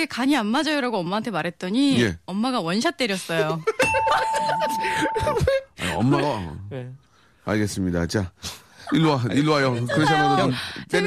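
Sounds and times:
speech: 0.0 - 11.0
people laughing: 3.4 - 6.1, 8.9 - 11.0
ding-dong chime sound effect: 3.8 - 5.6.

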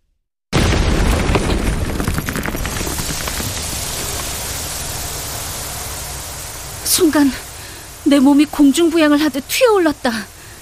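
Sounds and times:
loud explosion: 0.5 - 5.7
dense crackling roar: 0.6 - 8.5
speech: 7.0 - 7.4, 8.1 - 10.3.

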